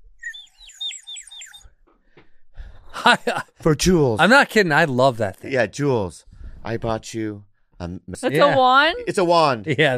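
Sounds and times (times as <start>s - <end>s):
bird singing whistled phrases: 0.2s - 1.7s
speech: 3.0s - 9.9s.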